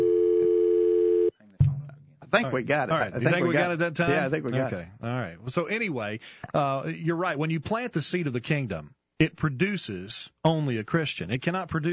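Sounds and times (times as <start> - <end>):
telephone dial tone: 0.0 - 1.3
speech: 2.3 - 11.9.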